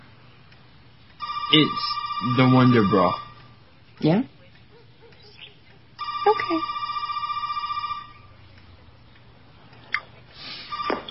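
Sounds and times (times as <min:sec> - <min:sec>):
telephone ringing with an electronic trill: 0:01.2 - 0:03.6, 0:06.0 - 0:08.4, 0:10.7 - 0:11.0
speech: 0:01.5 - 0:03.2, 0:04.0 - 0:04.3, 0:06.3 - 0:06.7.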